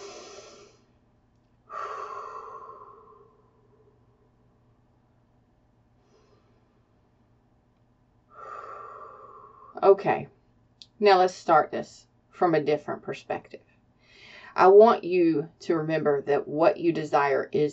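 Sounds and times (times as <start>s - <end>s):
slow deep breaths: 0.0s - 4.6s, 5.9s - 7.2s, 8.2s - 9.8s, 13.9s - 14.6s
speech: 9.8s - 10.4s, 11.0s - 13.7s, 14.6s - 17.7s.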